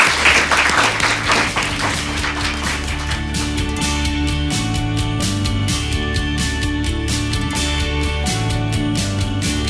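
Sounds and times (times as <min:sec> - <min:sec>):
audience applause thanking a discussion panel: 0:00.0 - 0:03.7
music: 0:00.0 - 0:09.6.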